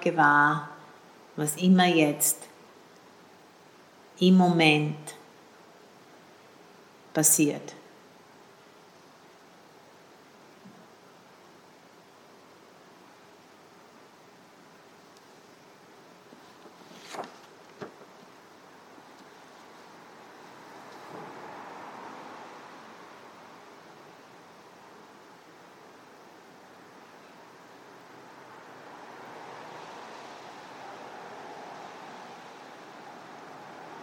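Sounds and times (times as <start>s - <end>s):
speech: 0.0s - 0.7s, 1.4s - 2.5s, 4.2s - 5.2s, 7.2s - 7.8s
car traffic passing outside: 20.0s - 24.6s, 27.7s - 34.0s.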